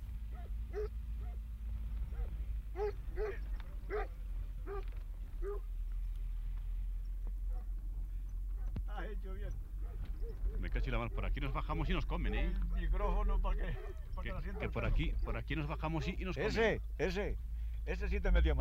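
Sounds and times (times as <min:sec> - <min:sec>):
car driving along a dirt track through the sierras at night: 0:00.0 - 0:18.6
dogs barking: 0:00.2 - 0:05.7, 0:07.4 - 0:07.8, 0:08.5 - 0:08.8, 0:09.7 - 0:16.2
speech: 0:09.2 - 0:18.6.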